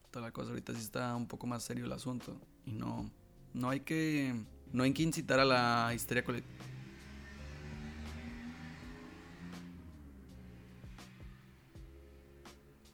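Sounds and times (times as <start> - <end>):
speech: 0.1 - 6.7
loud motorcycle passing outside a window: 5.6 - 12.9.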